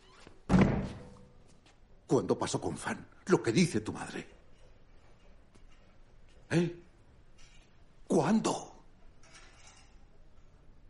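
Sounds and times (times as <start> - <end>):
door shut by a man with a solid thunk: 0.5 - 1.2
speech: 2.1 - 4.4, 6.5 - 6.8, 8.2 - 8.7.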